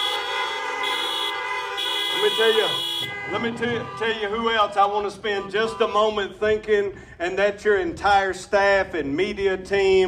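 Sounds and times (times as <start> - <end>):
car horns honking in a church parking lot: 0.0 - 6.6
speech: 2.2 - 10.0.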